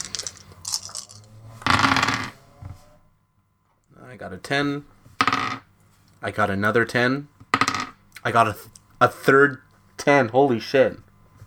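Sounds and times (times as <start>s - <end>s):
five dice clattering and tumbling across a hard surface: 0.0s - 2.2s
speech: 4.1s - 4.9s, 6.2s - 7.3s, 8.2s - 11.0s.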